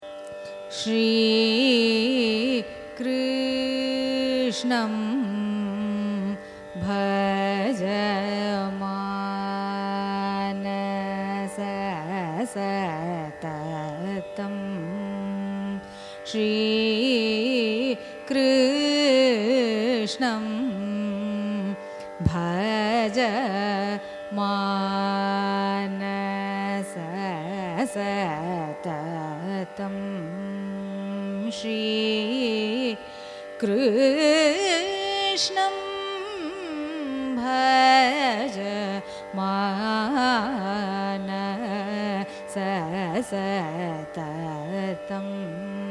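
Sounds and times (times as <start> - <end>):
carnatic raga music: 0.0 - 45.8.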